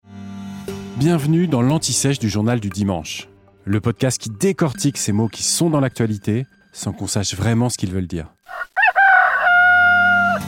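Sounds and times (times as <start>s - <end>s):
speech: 1.0s - 8.4s
rooster crowing: 8.5s - 10.4s.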